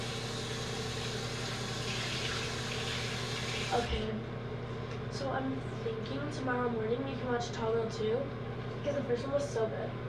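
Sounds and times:
cold tap water running as a person washes their face: 0.0s - 4.1s
speech: 3.7s - 4.3s, 5.2s - 10.0s.

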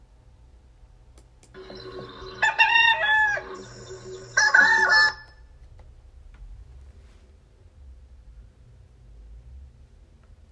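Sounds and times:
low hum: 0.0s - 10.5s
rooster crowing: 2.2s - 5.4s.

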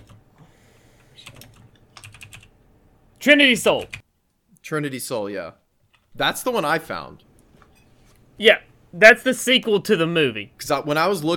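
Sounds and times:
computer keyboard typing: 1.2s - 2.5s, 3.8s - 4.0s
speech: 3.2s - 4.0s, 4.7s - 5.6s, 6.2s - 7.3s, 8.4s - 11.3s.

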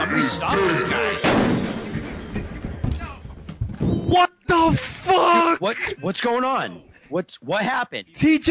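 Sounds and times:
speech: 0.2s - 1.5s, 4.1s - 8.4s
loud sharp gunshot: 1.2s - 2.0s.

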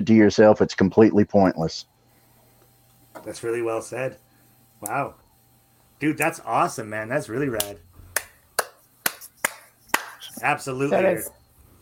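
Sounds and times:
speech: 0.0s - 1.9s, 3.2s - 4.2s, 4.8s - 5.2s, 6.0s - 7.9s, 10.4s - 11.4s
slow sharp hand claps from one person: 7.6s - 10.4s.

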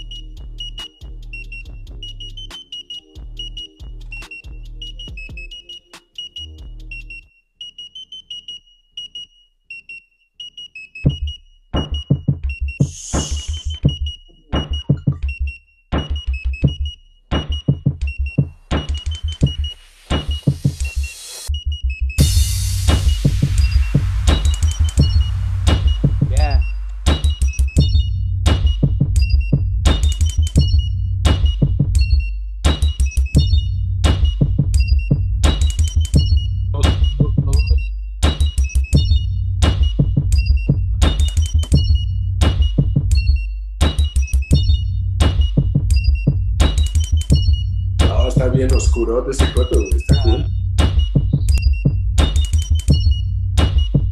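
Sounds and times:
pulsing low bass made from a microwave: 0.0s - 2.5s, 3.2s - 5.4s, 17.7s - 54.1s
punchy drums: 0.0s - 5.6s, 11.1s - 21.6s, 22.2s - 54.1s
hip-hop beat built from modified microwave sounds: 0.0s - 7.3s, 11.1s - 54.1s
high electronic beeping tone: 0.0s - 54.1s
speech: 49.0s - 50.0s.

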